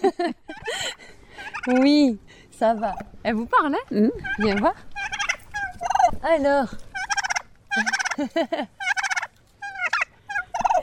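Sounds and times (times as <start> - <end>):
laughter: 0.0 - 1.0, 7.8 - 8.8
speech: 0.2 - 0.4, 1.6 - 4.9, 6.2 - 6.8, 7.8 - 8.8
turkey gobbling: 1.4 - 2.0, 4.2 - 6.2, 6.8 - 8.2, 8.8 - 10.8.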